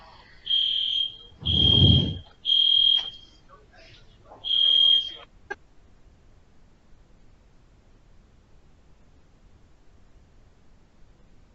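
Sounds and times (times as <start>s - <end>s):
fire alarm giving shrill high-pitched electronic beeps: 0.4s - 3.4s, 4.4s - 5.2s
low rumbling noise: 1.3s - 2.3s.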